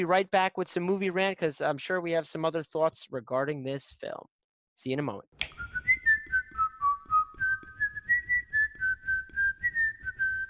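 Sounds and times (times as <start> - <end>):
speech: 0.0 - 5.6
person whistling a song: 5.8 - 10.4.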